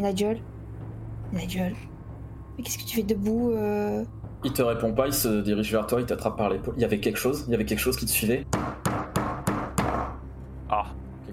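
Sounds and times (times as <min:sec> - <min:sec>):
speech: 0:00.0 - 0:00.5, 0:01.3 - 0:01.9, 0:02.6 - 0:08.7
heavy pounding knocks on a door: 0:08.4 - 0:10.2.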